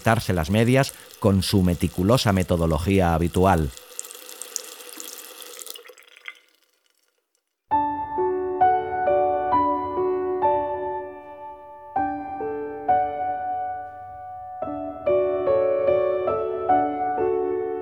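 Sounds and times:
speech: 0.0 - 3.8
water stream filling a bathtub: 0.0 - 7.6
sustained melodic music with repeated notes: 7.7 - 17.8.

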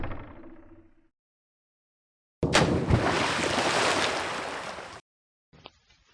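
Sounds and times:
loud water splash: 2.5 - 5.0
steady rush of churning water: 2.9 - 5.0.

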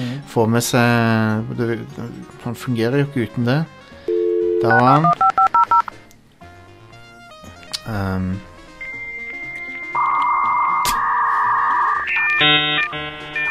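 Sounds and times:
speech: 0.3 - 3.8, 4.6 - 5.3, 7.9 - 8.5
synthetic beeps and tones of an answering machine boot-up: 4.4 - 5.9, 9.8 - 13.4
bright chiming notes of an answering machine boot-up: 8.8 - 13.4
quick sweeping chirp of an answering machine boot-up: 9.9 - 13.4.

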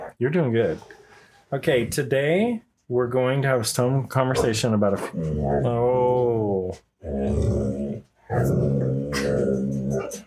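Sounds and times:
speech: 0.2 - 10.2
female dog growling: 4.3 - 10.2.

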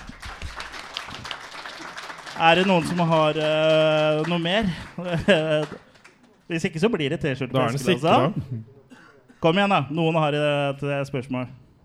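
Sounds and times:
audience applause: 0.0 - 6.5
speech: 2.4 - 5.9, 6.5 - 8.8, 9.4 - 11.6
laughter: 2.6 - 6.1, 7.6 - 9.7.

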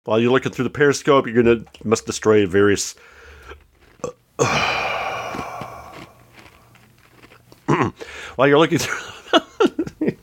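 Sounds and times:
speech: 0.0 - 4.9, 8.4 - 10.2
faint breaths: 3.0 - 3.6, 4.4 - 6.8, 8.0 - 8.4
raspy voiced belch: 4.0 - 6.2, 7.7 - 8.0.

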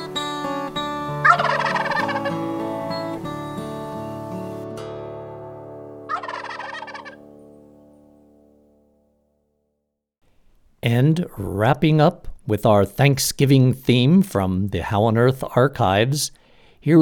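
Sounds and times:
wild turkey gobbling: 1.2 - 2.5, 6.1 - 7.2
speech: 10.9 - 17.0.

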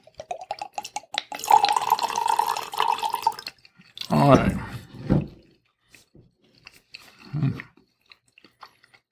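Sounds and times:
wine glugging from a bottle into a glass: 0.0 - 3.5
crunching and chewing thin crust pizza: 3.2 - 4.6, 5.4 - 9.1
speech: 4.1 - 4.7.

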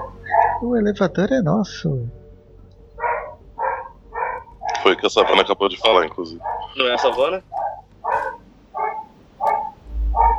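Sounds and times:
dogs barking: 0.0 - 0.7, 3.0 - 10.3
low rumble of noise: 0.0 - 10.3
speech: 0.6 - 2.2, 4.8 - 7.5.

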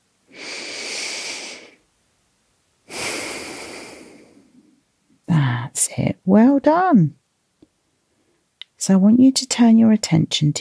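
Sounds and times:
deep breath drawn in during a guided relaxation exercise: 0.3 - 1.8, 2.9 - 4.8
speech: 5.8 - 7.2, 8.8 - 10.5.

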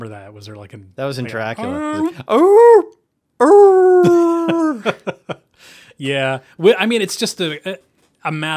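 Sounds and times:
speech: 0.0 - 3.6, 6.0 - 8.5
wolf howling sound effect: 1.6 - 4.8.

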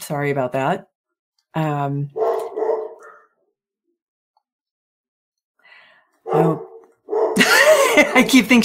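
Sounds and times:
speech: 0.1 - 0.9, 1.5 - 2.2, 6.3 - 6.7, 7.4 - 8.6
dog barking: 2.2 - 3.4, 6.2 - 7.4
laughter: 7.4 - 8.5.

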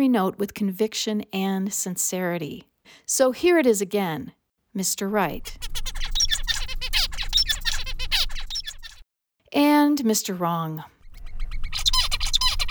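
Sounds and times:
speech: 0.0 - 6.0, 10.0 - 11.0
songbird singing a rich complex song of chirps, trills and whistles: 5.2 - 9.0, 11.0 - 12.6
simple monotonous bird song of repeated short downward chirps: 5.3 - 9.0, 11.0 - 12.6.

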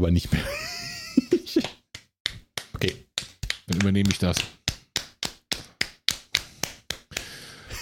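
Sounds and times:
speech: 0.0 - 0.7, 3.8 - 4.6
laughter: 0.4 - 1.7
improvised applause by hand claps or taps: 1.6 - 7.8.

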